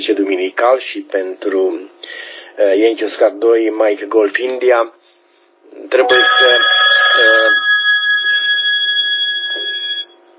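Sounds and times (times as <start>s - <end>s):
speech: 0.1s - 5.0s, 5.7s - 7.6s
telephone ringing during an amateur radio broadcast: 6.0s - 10.2s.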